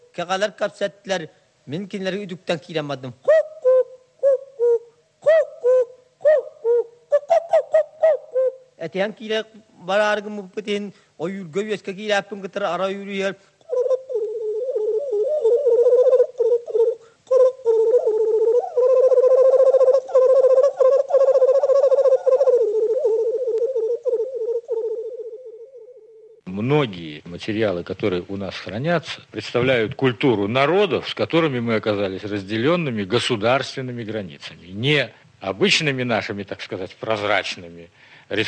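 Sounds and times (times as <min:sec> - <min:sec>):
speech: 0:00.2 - 0:03.3, 0:08.9 - 0:13.5, 0:26.8 - 0:38.4
solo voice imitating bird calls in a Yakut hunter's song: 0:03.2 - 0:08.7, 0:13.6 - 0:26.4.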